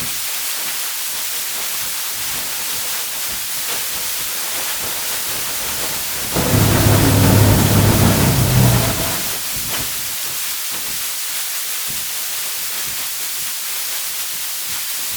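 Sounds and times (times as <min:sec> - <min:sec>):
demonic growl: 0:06.3 - 0:09.4.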